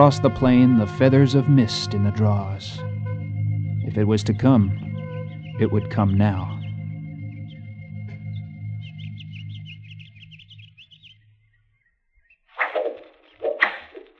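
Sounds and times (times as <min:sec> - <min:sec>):
speech: 0:00.0 - 0:02.9, 0:03.9 - 0:04.8, 0:05.6 - 0:06.6
low rumbling hum: 0:00.0 - 0:11.5
high chirping tones: 0:00.0 - 0:13.6
arrows whooshing through the air: 0:12.6 - 0:14.1.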